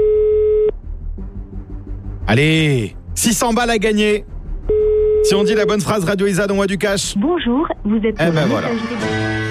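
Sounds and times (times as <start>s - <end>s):
telephone ringback tone: 0.0s - 0.7s, 4.7s - 5.7s
speech: 2.3s - 4.3s, 5.2s - 9.4s.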